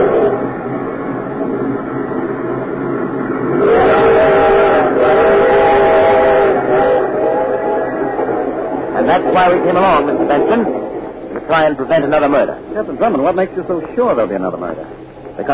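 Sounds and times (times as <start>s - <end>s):
long sustained train whistle: 0.0s - 0.5s, 3.5s - 8.7s
train rumbling along: 0.0s - 15.5s
speech: 9.2s - 10.8s, 11.5s - 15.5s.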